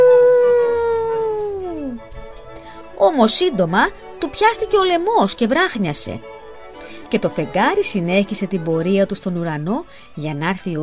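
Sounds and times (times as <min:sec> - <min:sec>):
person in a wolf fur imitating a wolf howl at a window at night: 0:00.0 - 0:02.1
speech: 0:03.0 - 0:06.4, 0:07.1 - 0:10.8.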